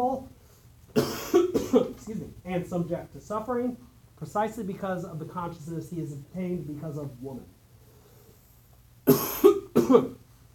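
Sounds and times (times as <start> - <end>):
speech: 0.0 - 0.4, 1.0 - 7.6, 9.9 - 10.2
rough coughs: 0.9 - 2.0, 9.0 - 10.2.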